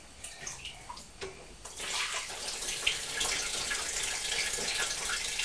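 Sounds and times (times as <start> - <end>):
water splashing and sloshing around a bucket: 0.3 - 5.4.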